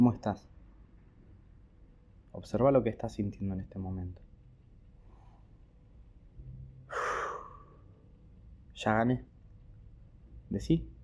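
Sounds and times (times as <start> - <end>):
speech: 0.0 - 0.5, 2.4 - 4.3, 8.8 - 9.3, 10.5 - 10.9
faint low rumble: 0.0 - 11.0
deep airy breath in and out: 6.8 - 8.0.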